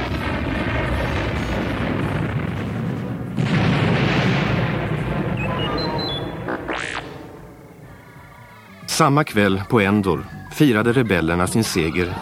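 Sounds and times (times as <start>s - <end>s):
large explosions shaking a half-built space station: 0.0s - 9.1s
high whistling tones: 5.3s - 7.1s
laughter: 7.8s - 12.2s
speech: 9.0s - 12.2s.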